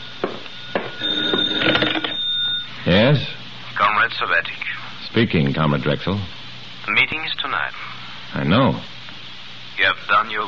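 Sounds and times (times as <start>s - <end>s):
telephone ringing: 0.0s - 2.7s
speech: 2.8s - 3.4s, 4.1s - 8.9s, 9.8s - 10.4s.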